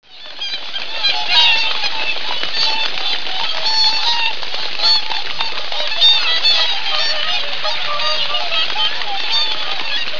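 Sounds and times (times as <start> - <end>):
Cygnus cygnus calling: 0.1 - 10.1.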